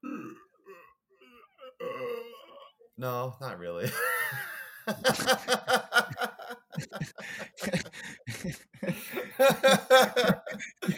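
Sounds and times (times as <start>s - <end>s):
longer louder belch-like groan: 0.0s - 2.8s
person forcing croaky voiced burp sounds: 0.0s - 2.9s
speech: 3.0s - 8.6s
laughter: 3.8s - 10.9s.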